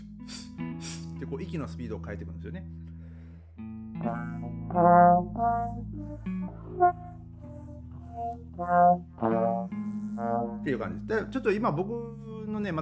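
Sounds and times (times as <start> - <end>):
speech: 1.3 - 2.8, 3.6 - 7.0, 8.2 - 12.8
trombone playing sustained notes: 4.0 - 11.8.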